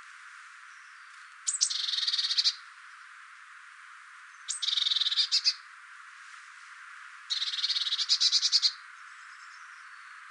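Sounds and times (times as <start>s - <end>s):
Eurasian blue tit Cyanistes caeruleus calls with rasping churr: 1.4s - 2.6s, 4.4s - 5.6s, 7.3s - 8.8s.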